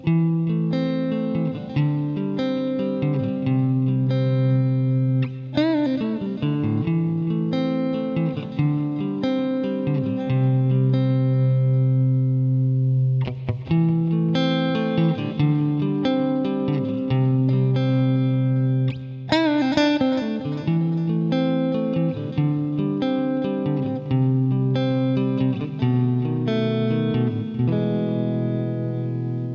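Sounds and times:
clean electric guitar playing ringing chords and picked notes: 0.0 - 29.5.

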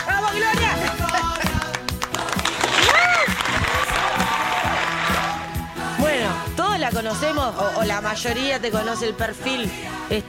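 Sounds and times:
crowd applauding: 0.0 - 5.6
people cheering: 0.0 - 5.7
speech: 7.0 - 10.2.

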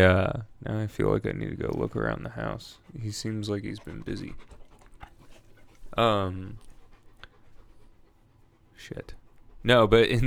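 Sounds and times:
speech: 0.0 - 4.6, 5.9 - 6.7, 8.8 - 10.2
dog panting and breathing heavily: 1.4 - 10.2.

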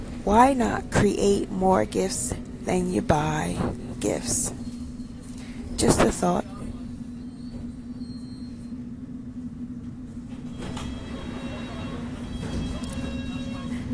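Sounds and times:
London Underground District line train rumbling at West Kensington station: 0.0 - 13.9
constant electrical hum of underground train: 0.0 - 13.9
speech: 0.2 - 4.6, 5.8 - 6.5
metallic squeals and clatter of underground train: 7.1 - 8.8, 10.5 - 13.9.

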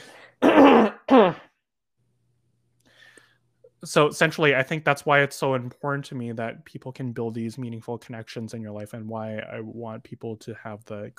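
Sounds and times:
faint breath: 0.0 - 0.4, 2.8 - 3.6
person clearing throat: 0.4 - 1.6
speech: 3.8 - 11.1.

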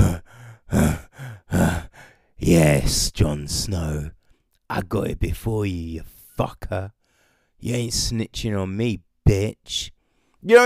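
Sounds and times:
voice imitating panting: 0.0 - 2.2
speech: 2.4 - 7.0, 7.6 - 10.6.

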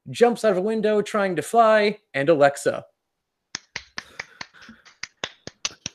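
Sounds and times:
speech: 0.1 - 2.9
sharp hand claps: 3.6 - 5.9.

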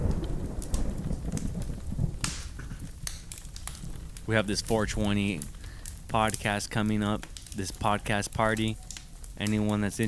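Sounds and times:
deep low rumble of thunder: 0.0 - 6.4
steady rain pattering on a surface: 0.0 - 10.0
speech: 4.3 - 8.8, 9.4 - 10.0.

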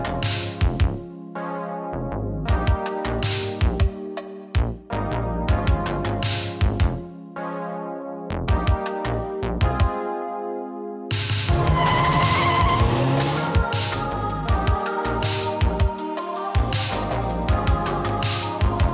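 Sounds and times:
pulsing electronic synthwave track with punchy rhythmic hits: 0.0 - 18.9
Ferrari race car engines roaring: 11.5 - 14.4
race car tires screeching: 11.5 - 14.4.

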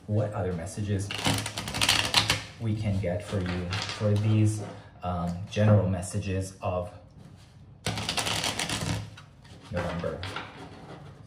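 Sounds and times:
speech: 0.1 - 1.7, 2.6 - 7.0, 9.7 - 10.4
tarot cards being shuffled: 1.1 - 2.5, 7.9 - 10.5.

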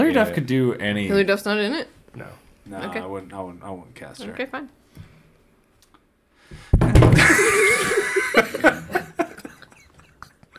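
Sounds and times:
speech: 0.1 - 4.8, 6.9 - 9.0
microphone knocked over on a desk: 6.6 - 7.4
laughter: 7.2 - 10.4.

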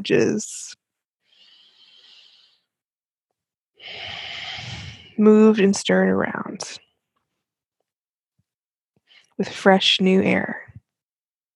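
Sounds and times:
speech: 0.0 - 0.8, 5.2 - 6.8, 9.4 - 10.7
deep lung-expanding breathing during a guided breathing exercise: 1.2 - 2.8, 3.8 - 5.2.

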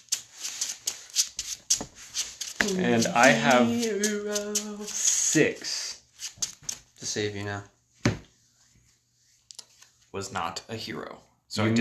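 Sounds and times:
deck of cards being shuffled during a card game: 0.0 - 7.0
speech: 2.6 - 5.8, 7.0 - 7.8, 10.2 - 11.7.

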